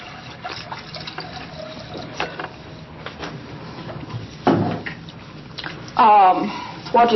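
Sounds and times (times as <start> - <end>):
water pouring into a container: 0.0 - 2.2
speech: 6.0 - 7.1.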